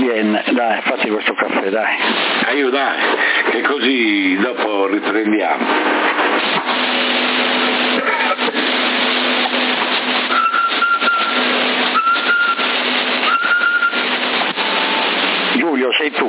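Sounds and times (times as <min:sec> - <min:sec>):
constant narrowband radio hiss: 0:00.0 - 0:16.2
speech: 0:00.2 - 0:08.9, 0:15.9 - 0:16.2
CB radio carrier whistle on 27.075 MHz: 0:10.3 - 0:14.1.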